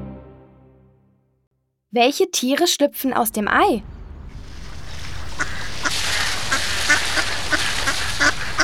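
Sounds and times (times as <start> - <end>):
speech: 1.9 - 4.0
mother duck with three ducklings quacking on a pond: 5.2 - 8.6.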